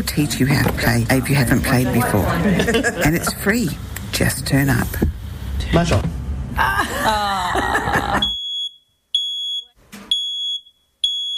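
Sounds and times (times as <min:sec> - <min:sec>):
speech: 0:00.1 - 0:08.3
laughter: 0:01.6 - 0:03.5, 0:06.6 - 0:08.4
smoke alarm beeping: 0:08.2 - 0:11.3.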